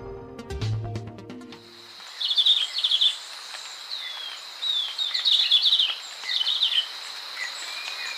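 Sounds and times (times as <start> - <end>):
music: 0.0 - 1.8
steady high insect drone: 1.6 - 8.1
chestnut-capped greenlet trilling song: 2.1 - 8.1.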